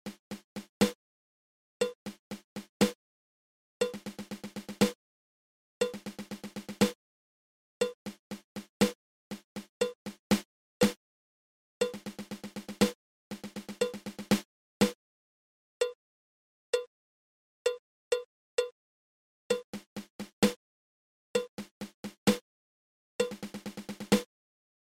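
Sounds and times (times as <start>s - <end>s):
nine-stroke drum roll: 0.1s - 0.9s, 2.1s - 2.9s, 3.8s - 4.9s, 5.8s - 6.9s, 7.8s - 11.0s, 11.8s - 14.9s, 19.7s - 20.6s, 21.4s - 22.4s, 23.2s - 24.3s.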